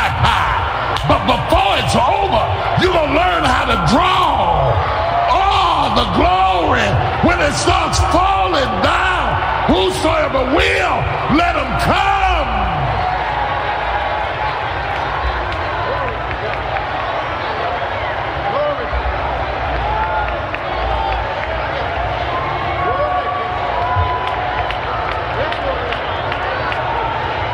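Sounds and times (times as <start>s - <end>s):
people shouting in a church congregation: 0.0s - 14.2s
church congregation clapping: 0.0s - 27.5s
church congregation worshipping and cheering: 0.0s - 27.5s
speech: 7.4s - 12.2s.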